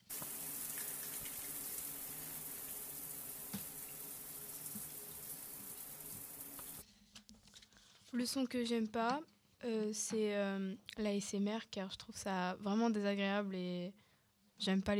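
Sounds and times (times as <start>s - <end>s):
running shower water: 0.0s - 6.8s
speech: 8.1s - 14.9s.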